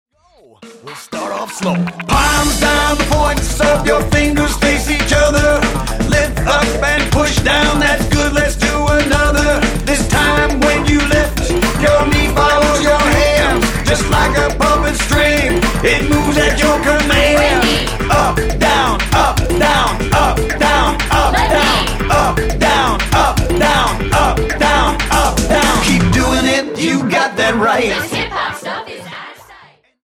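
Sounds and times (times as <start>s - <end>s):
fast hip hop music: 0.2s - 29.5s.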